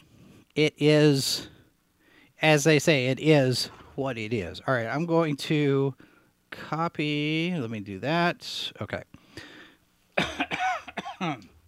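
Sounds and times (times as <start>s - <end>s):
speech: 0.6s - 1.5s, 2.4s - 9.5s, 10.2s - 10.5s, 11.2s - 11.5s
person coughing harsh throaty coughs: 10.2s - 11.6s.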